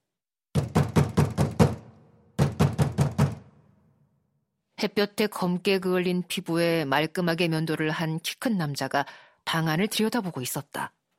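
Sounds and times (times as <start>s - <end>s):
loud forceful knocking on a door: 0.5s - 3.6s
speech: 4.8s - 11.0s.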